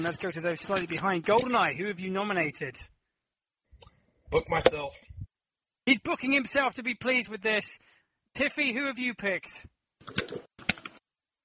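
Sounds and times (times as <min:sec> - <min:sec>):
speech: 0:00.0 - 0:03.0, 0:04.3 - 0:05.1, 0:05.9 - 0:10.5
keystrokes on a computer keyboard: 0:10.1 - 0:11.0.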